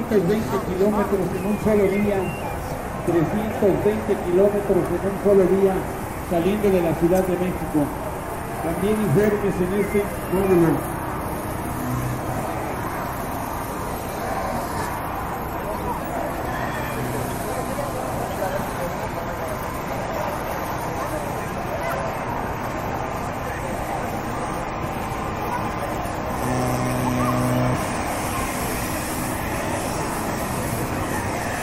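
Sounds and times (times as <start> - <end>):
low rumble of city traffic: 0.0 - 31.6
brief tonal sound: 26.4 - 28.0.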